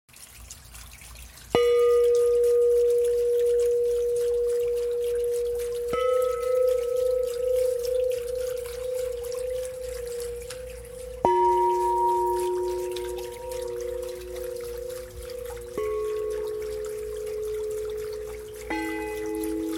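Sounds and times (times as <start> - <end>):
chimes: 1.6 - 19.7.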